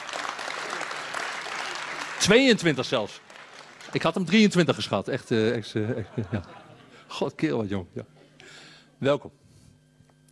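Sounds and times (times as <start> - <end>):
applause for a council member at a council meeting: 0.0 - 4.4
speech: 2.2 - 3.3, 3.9 - 8.2, 9.0 - 9.4
laughter: 5.4 - 7.2.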